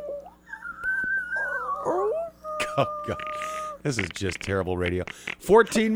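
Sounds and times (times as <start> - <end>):
voice squeaking in imitation of a humpback whale: 0.0 - 3.8
speech: 2.8 - 5.9.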